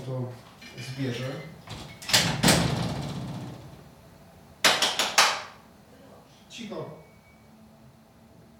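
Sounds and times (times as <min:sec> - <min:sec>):
speech: 0:00.0 - 0:02.7, 0:06.6 - 0:07.1
door dull thuds: 0:01.7 - 0:03.4.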